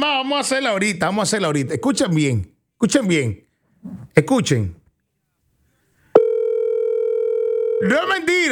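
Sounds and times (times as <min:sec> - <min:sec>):
speech: 0:00.1 - 0:04.8, 0:07.8 - 0:08.4
telephone dial tone of an outgoing call: 0:06.2 - 0:07.9.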